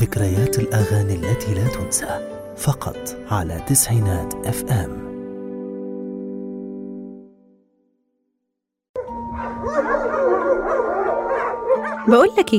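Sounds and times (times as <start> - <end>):
speech: 0.0 - 5.1, 12.1 - 12.5
long steady howl: 9.0 - 12.1.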